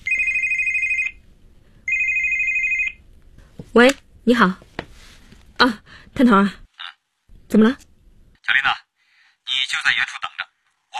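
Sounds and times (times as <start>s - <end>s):
mobile phone ringtone, high electronic warble: 0.0s - 1.2s, 1.9s - 3.0s
speech: 3.8s - 4.6s, 5.6s - 6.6s, 7.5s - 7.8s.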